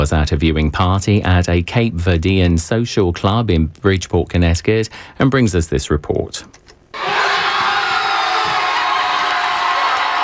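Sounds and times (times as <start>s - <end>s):
speech: 0.0s - 6.6s
packed crowd cheering at a social club as a World Cup goal is scored: 7.0s - 10.2s.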